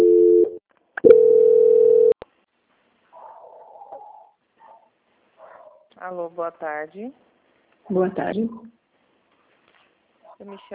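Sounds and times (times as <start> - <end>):
telephone line tones during a call transfer: 0.0 - 2.2
speech: 6.1 - 7.3, 7.9 - 8.8, 10.4 - 10.7.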